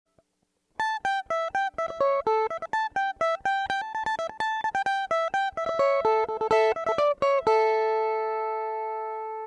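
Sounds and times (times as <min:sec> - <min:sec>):
electric mandolin: 0:00.1 - 0:09.4.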